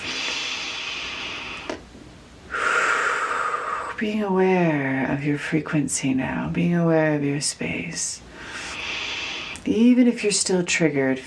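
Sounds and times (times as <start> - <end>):
deep breath during a guided meditation: 0.0 - 1.7, 2.5 - 4.0, 8.3 - 9.6
speech: 4.0 - 8.6, 9.8 - 11.2.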